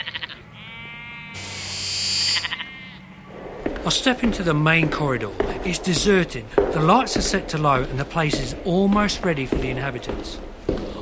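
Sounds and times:
sheep bleating with wavering calls: 0:00.0 - 0:03.3
speech: 0:03.9 - 0:10.5.

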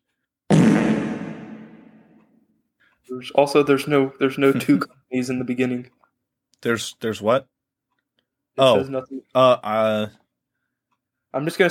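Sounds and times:
loud raspy fart sound effect: 0:00.5 - 0:02.2
speech: 0:03.0 - 0:06.0, 0:06.6 - 0:07.5, 0:08.6 - 0:10.2, 0:11.3 - 0:11.6.

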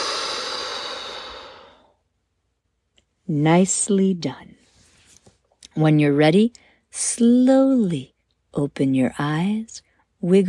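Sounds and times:
breathy exhale during a guided relaxation breathing exercise: 0:00.0 - 0:02.0
speech: 0:03.3 - 0:04.6, 0:05.8 - 0:10.4.

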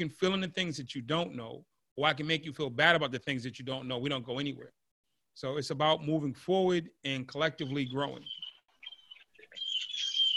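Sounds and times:
speech: 0:00.0 - 0:04.8, 0:05.4 - 0:08.4
birds chirping: 0:07.5 - 0:10.3.

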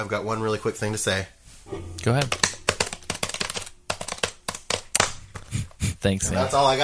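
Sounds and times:
speech: 0:00.0 - 0:02.5, 0:06.0 - 0:06.8
computer keyboard typing: 0:02.2 - 0:05.8.

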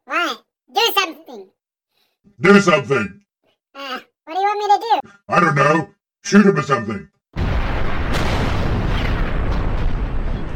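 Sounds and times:
speech: 0:02.4 - 0:03.2, 0:04.6 - 0:07.1
explosion blowing a hole in the side of a window: 0:07.4 - 0:10.5.

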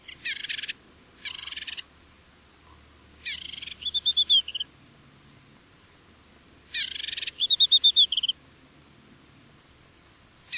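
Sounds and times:
African desert warbler call: 0:00.0 - 0:01.9, 0:02.6 - 0:04.7, 0:06.7 - 0:08.4.

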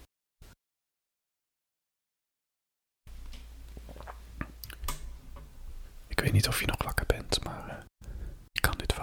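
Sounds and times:
person sipping a drink: 0:03.6 - 0:04.9
wet mouth clicks: 0:03.7 - 0:04.9
gulp: 0:03.8 - 0:04.8
speech: 0:06.2 - 0:07.9.

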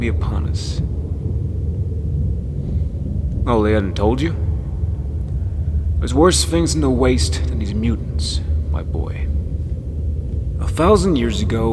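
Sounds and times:
speech: 0:00.0 - 0:01.1, 0:03.4 - 0:04.4, 0:06.0 - 0:09.3, 0:10.6 - 0:11.7
rumbling thunder of an approaching storm: 0:00.0 - 0:11.7.

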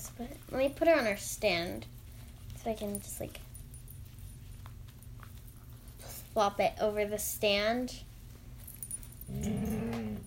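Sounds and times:
speech: 0:00.2 - 0:02.0, 0:02.6 - 0:03.5, 0:06.4 - 0:08.1, 0:09.3 - 0:09.6
female yellow Labrador groaning and grunting: 0:09.2 - 0:10.2.

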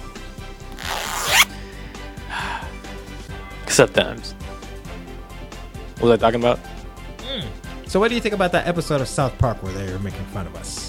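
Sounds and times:
zipper being zipped up: 0:00.8 - 0:01.5
speech: 0:03.8 - 0:04.4, 0:06.0 - 0:06.7, 0:07.4 - 0:10.8.

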